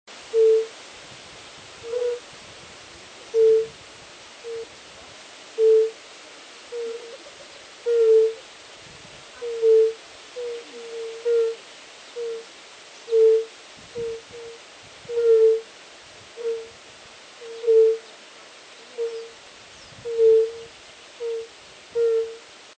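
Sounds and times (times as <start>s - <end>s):
Bombina bombina calling: 0.3s - 0.7s, 1.8s - 2.2s, 3.3s - 3.7s, 4.4s - 4.7s, 5.6s - 6.0s, 6.7s - 8.5s, 9.4s - 11.6s, 12.2s - 12.5s, 13.1s - 15.7s, 16.4s - 16.7s, 17.4s - 18.1s, 18.9s - 19.4s, 20.0s - 22.4s.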